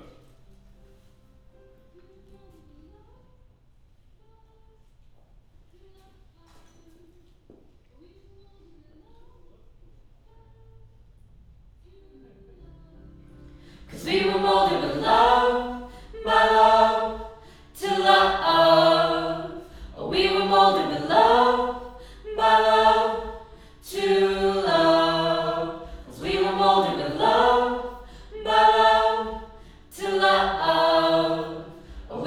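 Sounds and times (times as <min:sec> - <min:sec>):
choir singing: 0:13.8 - 0:32.2.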